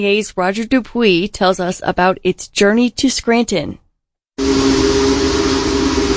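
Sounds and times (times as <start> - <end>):
speech: 0.0 - 3.8
Union Pacific Big Boy steam locomotive whistle: 4.4 - 6.1.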